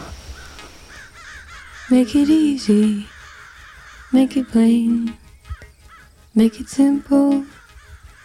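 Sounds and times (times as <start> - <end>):
crow cawing: 0.4 - 2.4, 3.0 - 4.7, 5.4 - 6.2, 7.4 - 8.2
speech: 1.9 - 3.2, 4.1 - 5.2, 6.4 - 7.6.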